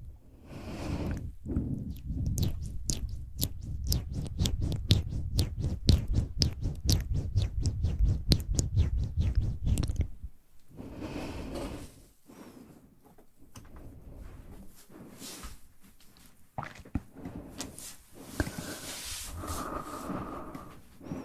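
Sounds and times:
brief breathy sounds: 0.2 - 2.0, 10.7 - 13.0, 17.1 - 21.2
close wet mouth clicks and pops: 1.8 - 10.2.

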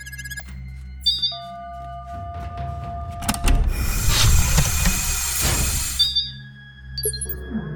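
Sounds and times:
airlock electronic beeps: 0.0 - 1.5, 5.9 - 6.4, 7.0 - 7.6
airlock door closing and sealing on Venus: 3.2 - 6.0.

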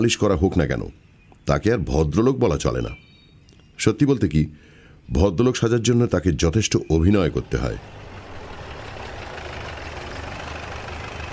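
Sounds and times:
speech: 0.0 - 3.0, 3.8 - 8.0
engine rumble of cars arriving: 7.0 - 11.3.

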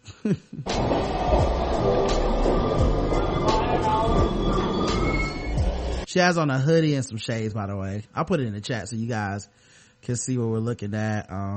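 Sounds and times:
speech: 0.2 - 1.1, 6.1 - 11.5
brief burst of noise: 0.7 - 6.1
high metallic subway train wheel squeals: 0.7 - 6.1
subway train rumbling: 0.7 - 6.1.

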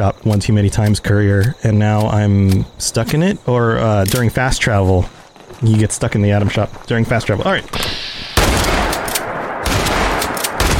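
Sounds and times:
speech: 0.0 - 8.1
shotgun blasts in a video game: 7.8 - 10.7.

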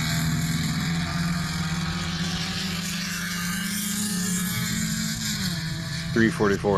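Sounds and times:
race car engine running at high revs: 0.0 - 6.7.

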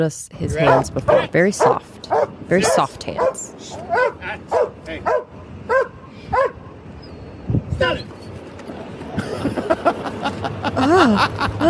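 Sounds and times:
speech: 0.0 - 5.2, 7.8 - 8.2, 10.7 - 11.6
German Shepherd barking during attack training: 0.6 - 6.7
laughter: 9.0 - 11.6.

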